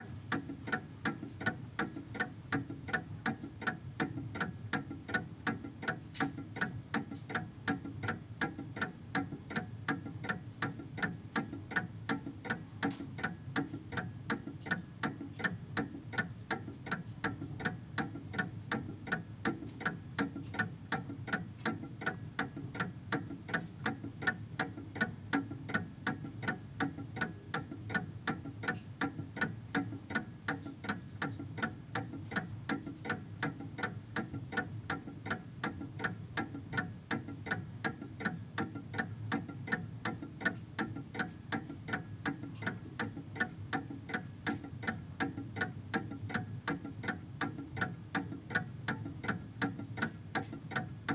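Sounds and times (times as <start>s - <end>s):
antique clock ticking: 0.0s - 51.1s.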